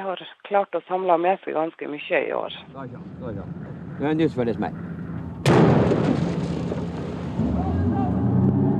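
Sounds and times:
speech: 0:00.0 - 0:04.9
whaling boat engine humming: 0:02.4 - 0:08.7
gunshot aboard a whaling boat: 0:05.4 - 0:07.4.

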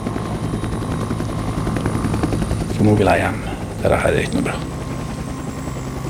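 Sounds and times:
helicopter rotor droning in gusty wind: 0:00.0 - 0:06.0
speech: 0:02.8 - 0:04.7.

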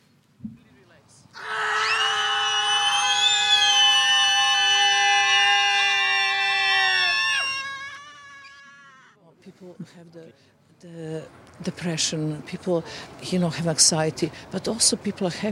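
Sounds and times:
people screaming: 0:01.4 - 0:09.2
speech: 0:11.7 - 0:15.5.

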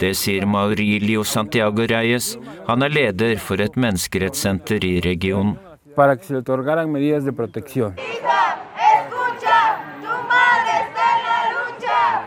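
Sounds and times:
speech: 0:00.0 - 0:08.3
crowd of women chanting in unison in a protest march: 0:08.0 - 0:12.2.

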